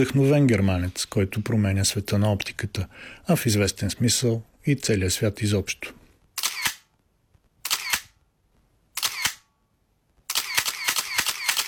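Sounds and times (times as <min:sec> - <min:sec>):
speech: 0:00.0 - 0:06.0
paparazzi camera shutter clicks: 0:06.4 - 0:06.9, 0:07.6 - 0:08.2, 0:09.0 - 0:09.5, 0:10.3 - 0:11.6.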